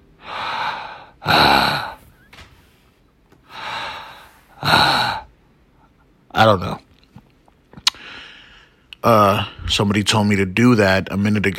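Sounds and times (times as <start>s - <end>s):
deliberate heavy breathing into the microphone: 0.2s - 2.3s, 3.4s - 5.3s, 7.9s - 9.8s
speech: 1.3s - 1.5s, 6.4s - 6.8s, 9.0s - 11.5s.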